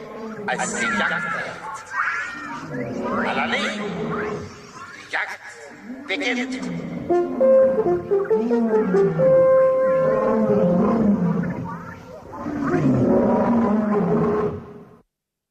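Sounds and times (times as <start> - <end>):
lion roaring on safari: 0.0 - 4.8, 5.8 - 15.0
speech: 0.5 - 2.0, 2.6 - 9.6.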